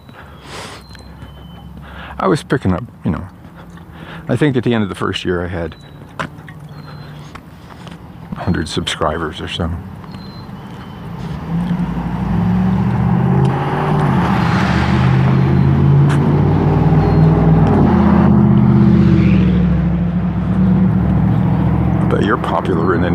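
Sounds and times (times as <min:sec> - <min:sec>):
speech: 0:02.2 - 0:03.4, 0:04.3 - 0:06.0, 0:08.5 - 0:09.9
pickup truck with loud muffler passing: 0:10.4 - 0:23.1.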